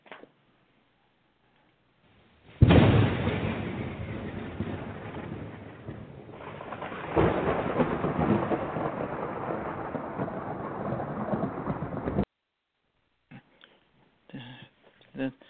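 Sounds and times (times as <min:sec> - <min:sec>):
crack of thunder during a thunderstorm: 0:02.5 - 0:12.3.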